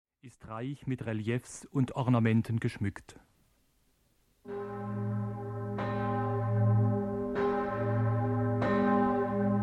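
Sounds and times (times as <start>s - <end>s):
speech: 0.2s - 3.3s
ornate church bell with baroque tuning tolling: 4.5s - 9.6s.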